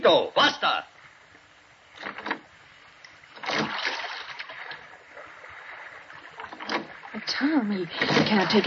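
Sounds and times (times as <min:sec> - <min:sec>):
speech: 0:00.0 - 0:00.9, 0:07.4 - 0:08.6
oars of a rowboat splashing water: 0:01.9 - 0:08.6.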